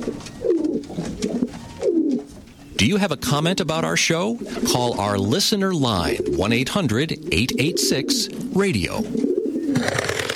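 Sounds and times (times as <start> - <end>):
carrier pigeon cooing: 0.0 - 2.8, 4.3 - 4.8, 6.0 - 10.3
hiss: 0.0 - 10.3
speech: 2.8 - 9.2.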